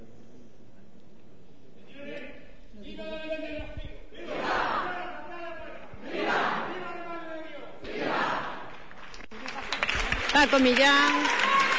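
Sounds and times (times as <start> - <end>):
crowd cheering and chanting during a vote count: 4.2 - 5.3, 6.0 - 7.2, 7.8 - 8.9
speech: 10.5 - 11.4.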